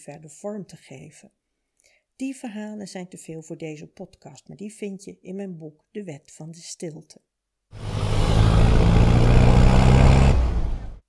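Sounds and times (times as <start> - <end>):
speech: 0.0 - 1.4, 2.2 - 7.9
motorcycle engine droning while riding down a mountain road: 7.8 - 11.0.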